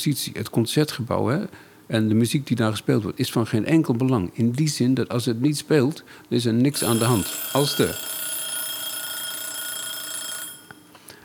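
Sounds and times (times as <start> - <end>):
speech: 0.0 - 8.2
small bell ringing: 6.7 - 10.9.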